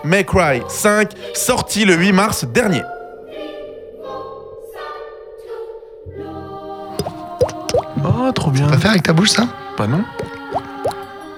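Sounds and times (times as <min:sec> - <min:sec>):
speech: 0:00.0 - 0:02.9, 0:08.3 - 0:10.4
water drops plopping: 0:07.0 - 0:11.1.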